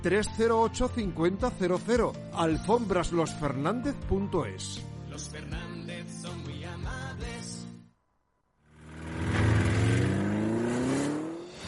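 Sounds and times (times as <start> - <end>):
speech: 0.0 - 7.6
car engine starting and revving: 8.7 - 11.6.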